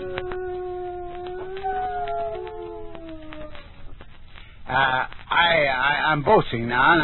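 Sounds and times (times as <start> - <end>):
dog howling in imitation of a coyote: 0.0 - 3.9
speech: 4.7 - 7.0.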